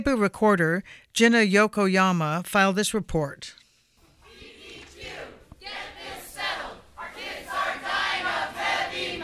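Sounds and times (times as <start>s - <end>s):
speech: 0.0s - 3.6s
crowd of protesters chanting and shouting: 4.2s - 9.2s.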